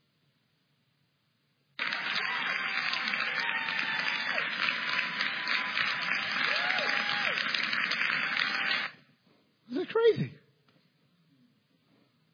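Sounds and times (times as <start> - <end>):
legislators applauding and cheering after a law was passed: 1.8 - 9.1.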